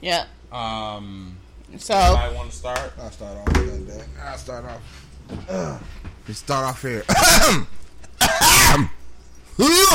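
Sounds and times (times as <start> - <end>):
speech: 0.0 - 9.0, 9.6 - 9.9
person clearing throat: 7.1 - 9.0.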